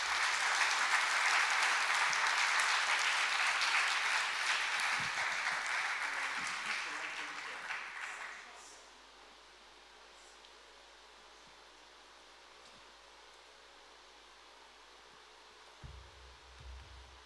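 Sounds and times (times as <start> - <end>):
audience applause for a guest invited onto the stage: 0.0 - 8.6.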